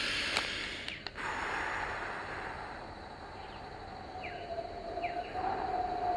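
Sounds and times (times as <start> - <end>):
long breathy exhale during a breathing exercise: 0.0 - 3.0
faint chirps: 0.0 - 6.1.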